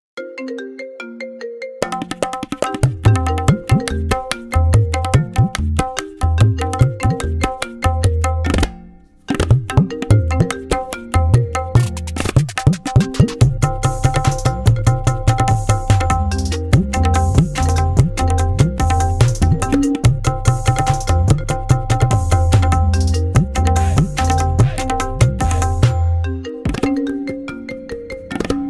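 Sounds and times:
ringtone music mix: 0.2s - 28.6s.

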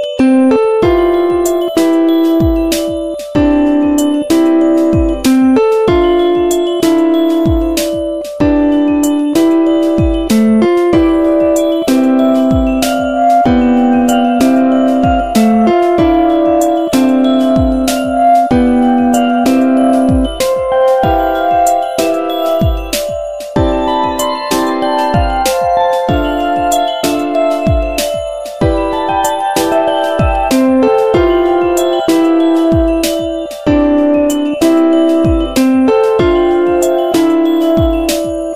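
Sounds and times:
love background music ringtone: 0.2s - 38.5s.

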